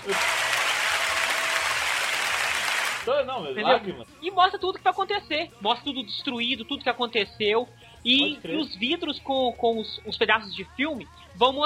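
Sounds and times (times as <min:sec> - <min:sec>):
applause from many hands clapping: 0:00.0 - 0:03.1
speech: 0:03.1 - 0:11.6.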